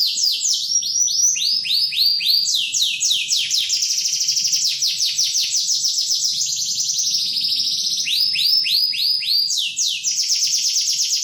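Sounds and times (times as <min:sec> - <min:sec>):
canary singing a rolling trill: 0:00.0 - 0:11.2.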